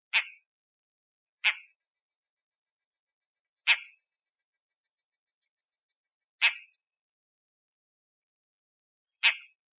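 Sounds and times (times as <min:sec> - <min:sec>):
buppousou owl calling: 0:00.1 - 0:00.5, 0:01.4 - 0:02.0, 0:03.6 - 0:05.8, 0:06.4 - 0:06.8, 0:09.2 - 0:09.7.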